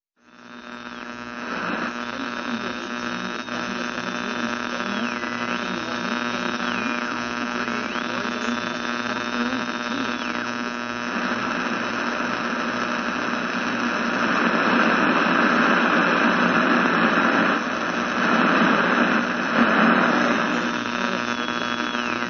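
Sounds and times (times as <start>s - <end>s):
radio static: 0.2s - 22.2s.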